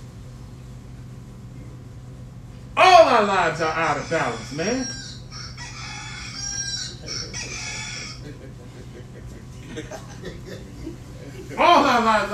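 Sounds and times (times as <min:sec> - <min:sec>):
steady low hum: 0:00.0 - 0:12.3
rooster crowing: 0:03.1 - 0:10.6
speech: 0:03.2 - 0:05.0, 0:09.8 - 0:10.6
clucking: 0:04.0 - 0:10.2
laughter: 0:06.8 - 0:12.3.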